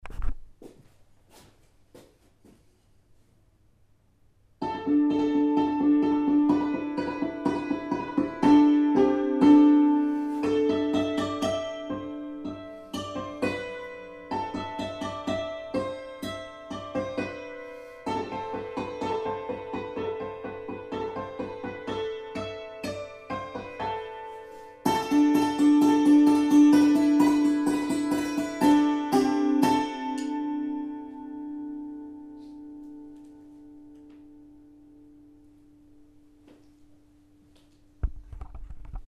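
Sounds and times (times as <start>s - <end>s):
hammered dulcimer: 4.6s - 32.7s.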